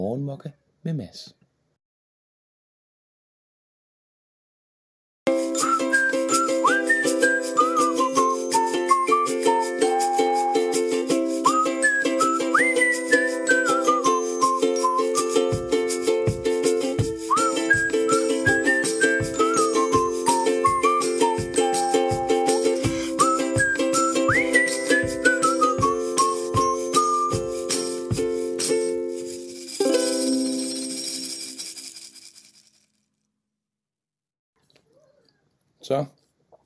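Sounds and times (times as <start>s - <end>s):
speech: 0.0s - 1.4s
whistled melody of a podcast jingle: 5.3s - 31.8s
steady sustained musical backing: 5.3s - 32.2s
regular thumping beat: 15.4s - 28.8s.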